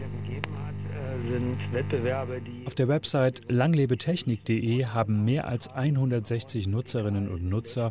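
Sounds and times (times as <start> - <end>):
tinny voice from an old valve radio: 0.0 - 2.8
old valve radio low hum: 0.0 - 7.8
old valve radio switch click: 0.3 - 0.6
speech: 1.3 - 7.8.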